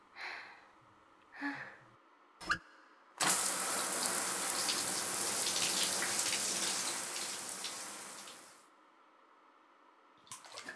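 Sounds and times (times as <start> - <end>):
shower water running: 3.2 - 8.6.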